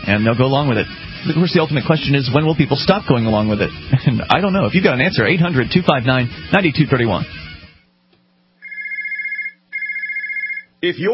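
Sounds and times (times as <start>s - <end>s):
speech: 0.1s - 7.5s, 10.8s - 11.1s
telephone ringing in a warbling electronic trill: 8.6s - 10.8s.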